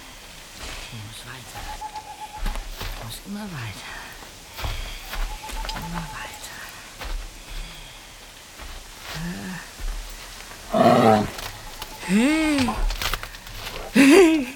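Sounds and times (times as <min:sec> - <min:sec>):
faint hissing outdoor background: 0:00.0 - 0:14.5
speech: 0:00.9 - 0:02.5, 0:03.1 - 0:04.0, 0:05.8 - 0:06.2, 0:10.8 - 0:11.4, 0:12.1 - 0:12.8
bear growling in a forest: 0:10.6 - 0:13.1
laughter: 0:13.8 - 0:14.5.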